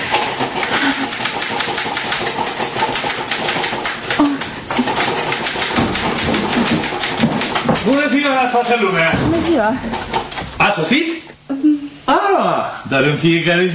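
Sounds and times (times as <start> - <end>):
typewriter keys clattering: 0.0 - 8.8, 9.9 - 10.6
speech: 7.9 - 13.7.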